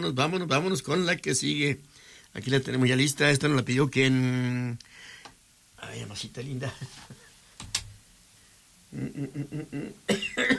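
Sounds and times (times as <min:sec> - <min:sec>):
speech: 0:00.0 - 0:05.1, 0:05.8 - 0:07.2, 0:08.9 - 0:10.5
person in a forceful coughing fit: 0:09.7 - 0:10.5.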